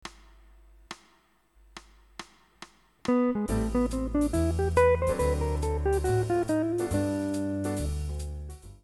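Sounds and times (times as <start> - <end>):
ii V I jazz licks: 3.1 - 8.7.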